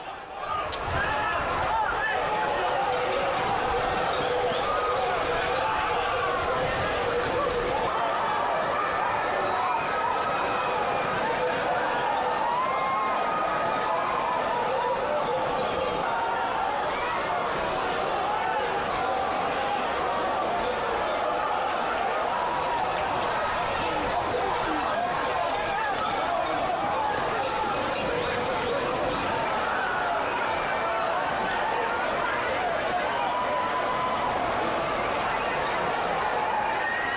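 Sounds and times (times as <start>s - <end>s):
crowd shouting and chattering while running from released bulls: 0.0s - 37.1s.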